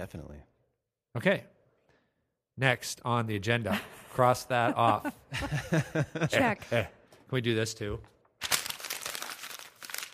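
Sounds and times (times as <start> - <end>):
speech: 0.0 - 0.5, 1.1 - 1.6, 2.6 - 8.5
laughter: 3.7 - 6.9
paper being crumpled by hand: 8.4 - 10.1.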